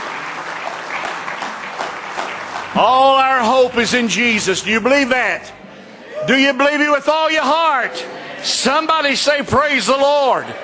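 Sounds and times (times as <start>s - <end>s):
church congregation clapping hands in praise during worship: 0.0s - 4.4s
speech: 2.8s - 5.6s, 6.2s - 10.6s.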